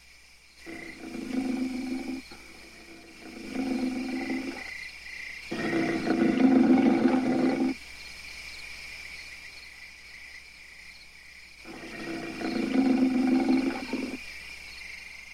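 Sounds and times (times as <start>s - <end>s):
angry ape growling: 0.7s - 4.7s, 5.5s - 7.8s, 11.7s - 14.2s.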